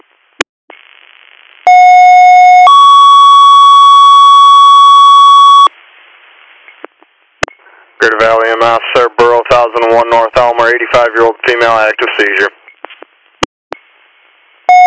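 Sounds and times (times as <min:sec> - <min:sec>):
faint radio hiss: 0:00.0 - 0:01.7, 0:05.7 - 0:14.7
loud two-tone radio paging alert: 0:01.7 - 0:05.7
speech: 0:08.0 - 0:12.6
radio squelch clicks: 0:12.7 - 0:13.9.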